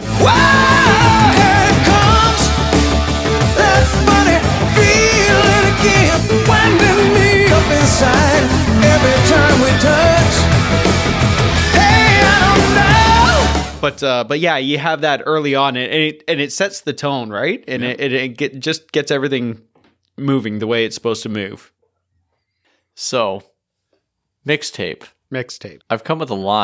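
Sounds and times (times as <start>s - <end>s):
electric guitar screaming in high bending squeals in rock music: 0.0s - 13.8s
bass in rock music: 0.0s - 14.0s
heavy drums in rock music: 0.0s - 14.0s
speech: 13.9s - 21.8s, 23.0s - 23.5s, 24.4s - 26.6s.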